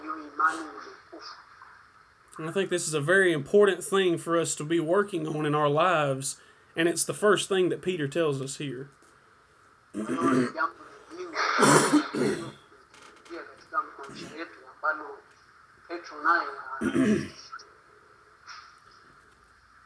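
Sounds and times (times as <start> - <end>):
speech: 0.3 - 1.6, 2.4 - 9.0, 10.0 - 12.6, 15.9 - 17.4
person clearing throat: 10.0 - 10.6, 11.5 - 12.7, 16.8 - 17.4
person coughing while getting sick: 10.0 - 10.6, 11.6 - 12.6, 16.8 - 17.4.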